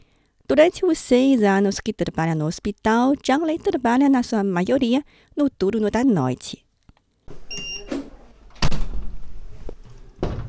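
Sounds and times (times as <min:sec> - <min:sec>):
speech: 0:00.5 - 0:06.6
door opening and closing: 0:07.3 - 0:10.4.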